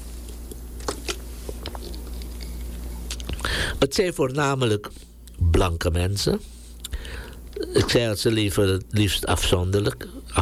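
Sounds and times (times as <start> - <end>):
low steady hum: 0.0 - 10.4
person sipping water: 0.2 - 3.6
speech: 3.8 - 6.5, 7.7 - 10.4.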